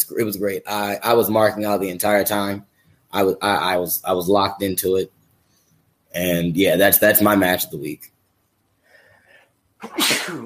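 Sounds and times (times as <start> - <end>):
speech: 0.1 - 5.2, 6.1 - 8.1, 9.8 - 10.4
person sneezing: 9.8 - 10.4.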